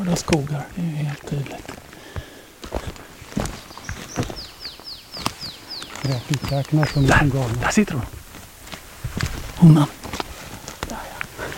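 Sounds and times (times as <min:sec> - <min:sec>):
speech: 0:00.0 - 0:01.8, 0:06.1 - 0:08.2, 0:09.6 - 0:10.0
footsteps crunching along forwarder or harvester wheel tracks in a forest: 0:00.0 - 0:11.5
high downward-sweeping bird chirps: 0:03.4 - 0:08.0.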